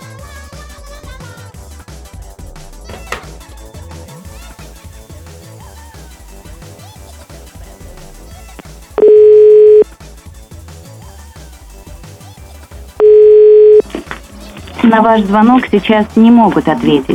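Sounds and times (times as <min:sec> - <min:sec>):
music: 0:00.0 - 0:17.1
telephone line ringback tones: 0:09.0 - 0:09.8, 0:13.0 - 0:13.8
speech: 0:14.9 - 0:17.1.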